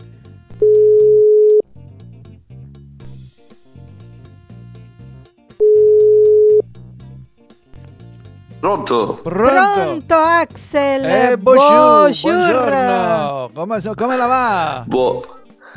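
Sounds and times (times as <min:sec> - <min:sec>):
music: 0:00.0 - 0:15.7
ringback tones of an outgoing telephone call: 0:00.6 - 0:01.6, 0:05.6 - 0:06.6
speech: 0:08.6 - 0:15.3.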